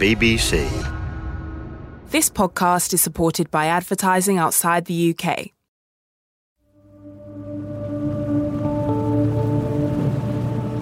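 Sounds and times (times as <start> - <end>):
speech: 0.0 - 0.9, 2.1 - 5.6
rain falling: 8.0 - 10.7.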